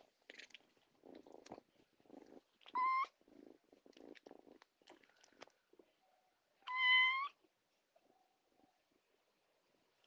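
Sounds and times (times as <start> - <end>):
domestic cat meowing in Bahia Brazil: 2.7 - 3.1, 6.6 - 7.4.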